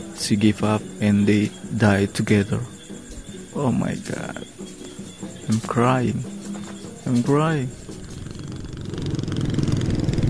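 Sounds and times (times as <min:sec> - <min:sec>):
speech: 0:00.2 - 0:02.7, 0:03.6 - 0:04.6, 0:05.5 - 0:06.3, 0:07.0 - 0:07.8
motorcycle engine while riding on a road: 0:07.7 - 0:10.2.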